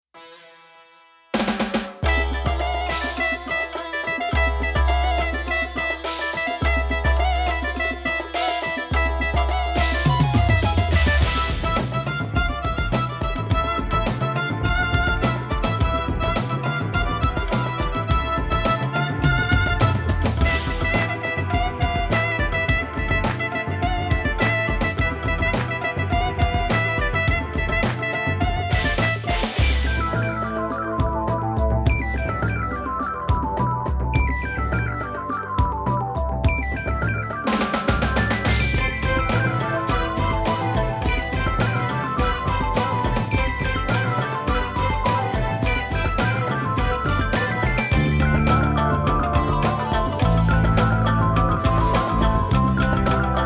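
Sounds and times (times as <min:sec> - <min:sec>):
Yamaha PSR 530 electronic keyboard: 0:01.4 - 0:53.4.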